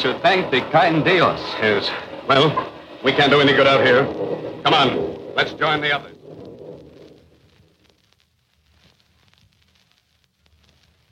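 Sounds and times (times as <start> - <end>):
speech: 0.0 - 6.2
low thunder rumble: 0.0 - 8.2
heavy rain in a storm: 0.0 - 11.1.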